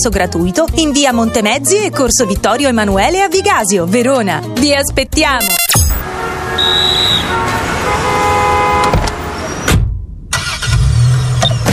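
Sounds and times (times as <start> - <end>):
speech: 0.0 - 5.8, 6.6 - 8.1
car horn tooting: 5.4 - 9.6
city traffic engines rumbling: 5.9 - 11.7.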